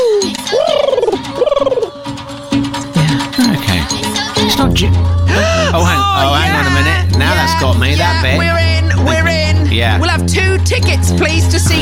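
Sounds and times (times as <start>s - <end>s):
warbling hoot-like bird calls: 0.0s - 2.0s
film soundtrack music: 0.0s - 11.8s
speech: 7.6s - 11.8s.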